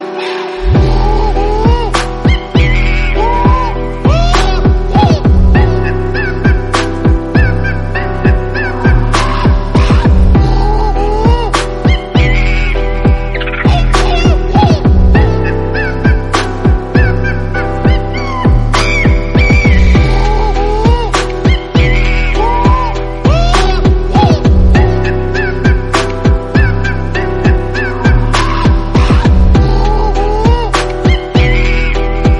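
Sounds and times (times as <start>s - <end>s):
beat music: 0.0s - 32.3s
monkey sound: 0.2s - 32.3s.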